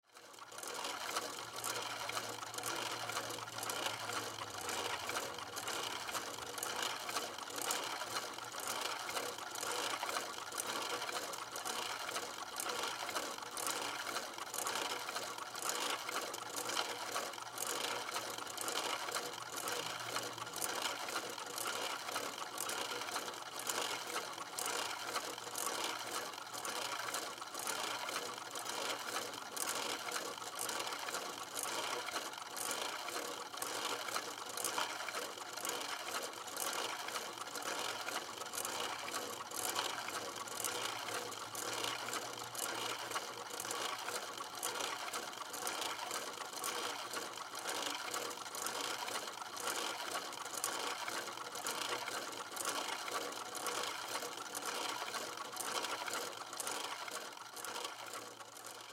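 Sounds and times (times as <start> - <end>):
fake household fireplace motor running: 0.0 - 58.9.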